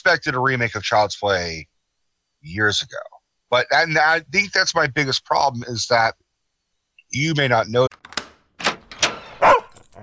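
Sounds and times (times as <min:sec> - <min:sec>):
speech: 0:00.0 - 0:01.7, 0:02.4 - 0:06.2, 0:07.1 - 0:07.9
dog barking: 0:09.4 - 0:10.0.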